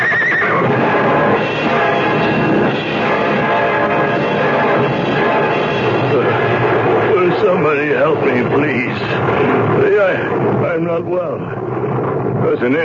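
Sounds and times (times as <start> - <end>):
hurt horses neighing and whinnying in distress: 0.0 - 0.6
dense noisy background: 0.0 - 12.8.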